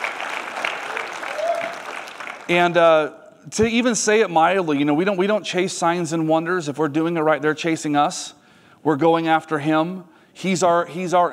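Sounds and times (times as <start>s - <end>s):
congregation applauding: 0.0s - 2.8s
speech: 2.5s - 11.3s.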